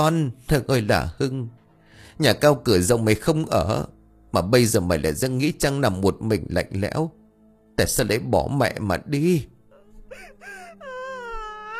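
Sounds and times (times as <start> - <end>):
speech: 0.0 - 1.6, 2.2 - 7.2, 7.8 - 9.5
woman wailing and sobbing in grief over a coffin: 9.7 - 11.7.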